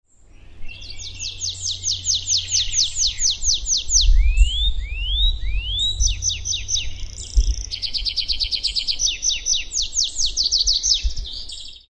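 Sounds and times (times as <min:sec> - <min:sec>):
tree pipit: 0:00.1 - 0:11.9.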